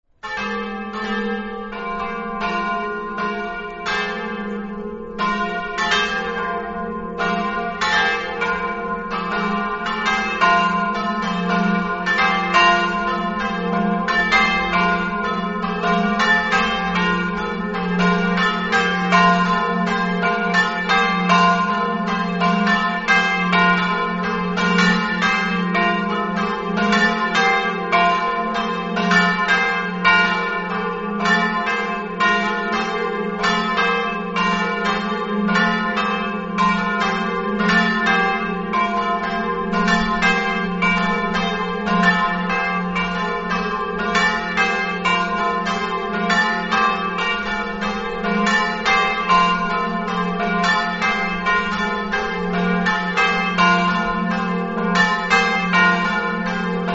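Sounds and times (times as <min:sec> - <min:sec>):
bells ringing in Mereto: 0:00.2 - 0:56.9.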